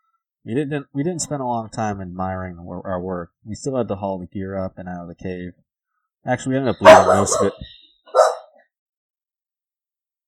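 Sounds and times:
speech: 0.4s - 5.6s, 6.2s - 7.8s
dog barking: 6.8s - 8.6s.

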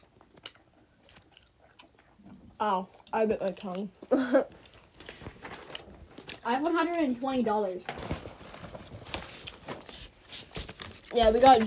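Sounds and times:
chewing a sticky fruit chew candy: 0.0s - 3.9s
speech: 2.6s - 4.6s, 6.4s - 8.1s, 11.1s - 11.6s.

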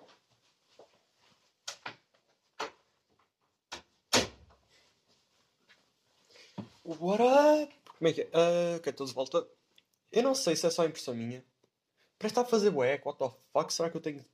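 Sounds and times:
shuffling: 0.0s - 3.2s, 4.6s - 7.8s
door closing with a thud: 4.1s - 4.4s
speech: 6.9s - 11.5s, 12.2s - 14.3s.

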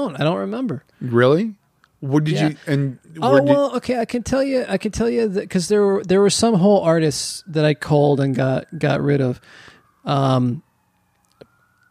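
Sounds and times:
speech: 0.0s - 10.7s
faint emergency siren wailing: 2.3s - 11.8s.

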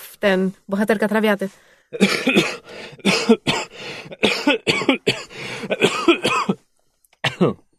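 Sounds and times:
speech: 0.2s - 6.2s, 7.4s - 7.6s
person coughing in harsh hacking bursts: 2.0s - 6.6s, 7.2s - 7.6s.

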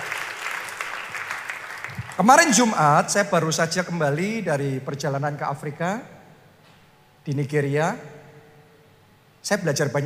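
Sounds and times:
church audience clapping at a Christmas service: 0.0s - 2.6s
speech: 2.2s - 6.2s, 7.2s - 8.2s, 9.4s - 10.0s.

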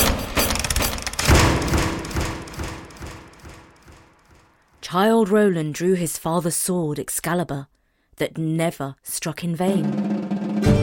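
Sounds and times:
double doors smashing with a heavy splintering crash: 0.0s - 3.5s
dull thuds: 1.2s - 4.4s
speech: 4.9s - 10.8s.

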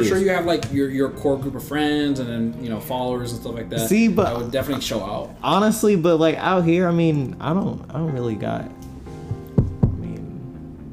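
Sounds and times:
speech: 0.0s - 8.8s
solid knocks on a wooden surface: 9.3s - 10.1s
soft tap: 9.3s - 10.2s.

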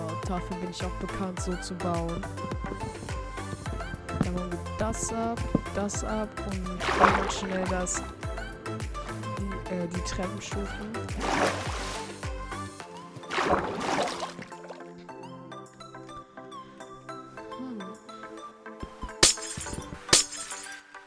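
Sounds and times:
steady musical background: 0.0s - 21.0s
speech: 0.3s - 3.2s, 4.3s - 8.1s, 9.7s - 11.8s
video game glass blocks breaking as they are mined: 19.2s - 20.8s.

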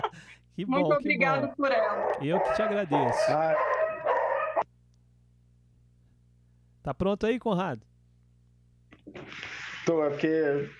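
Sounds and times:
laughter: 0.0s - 0.3s
speech: 0.2s - 3.8s, 6.8s - 7.9s, 9.1s - 10.7s
dogs barking and yowling: 1.3s - 4.7s.

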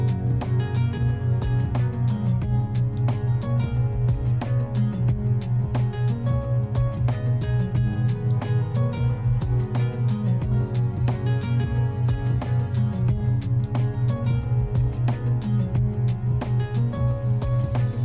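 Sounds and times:
binaural beats steady low hum: 0.0s - 18.0s
music of quick plucked or struck notes: 0.0s - 18.0s.

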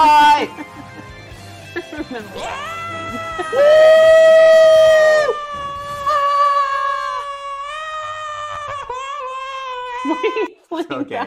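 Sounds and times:
speech: 2.1s - 4.4s, 10.7s - 11.2s
loud high-pitched excited scream as a victory sound effect: 2.4s - 10.5s.

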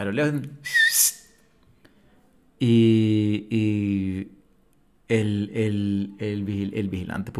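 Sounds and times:
speech: 0.0s - 0.8s, 2.6s - 4.2s, 5.1s - 7.3s
person imitating a piercing whistle: 0.6s - 1.3s.

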